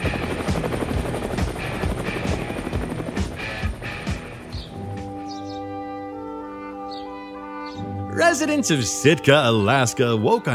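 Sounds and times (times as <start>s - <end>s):
helicopter rotor chopping over Mount Edgecumbe crater in Sitka Alaska: 0.0s - 5.3s
speech: 8.2s - 10.5s.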